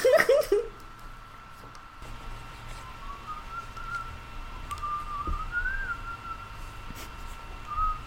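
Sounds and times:
laughter: 0.0 - 0.8
low hum: 0.0 - 8.0
person whistling a melody: 2.8 - 6.6, 7.7 - 8.0.

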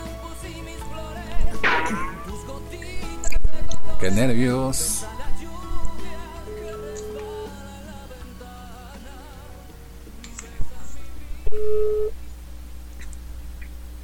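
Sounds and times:
music: 0.0 - 12.4
speech: 4.0 - 5.1
phone ringback tones: 11.5 - 12.1.

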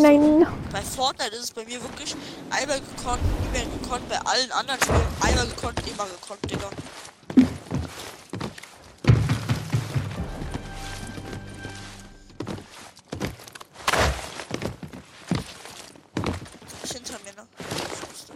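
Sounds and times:
speech: 0.0 - 7.6
video game character footsteps: 4.8 - 18.3.

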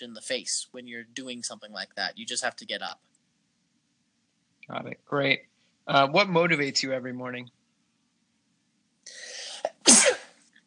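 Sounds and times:
speech: 0.0 - 3.1, 4.7 - 7.6
sneeze: 9.5 - 10.4.

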